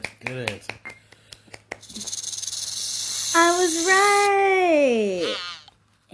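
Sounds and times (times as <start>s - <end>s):
speech: 0.3s - 0.6s, 3.6s - 5.4s
rattlesnake rattling: 1.8s - 4.3s.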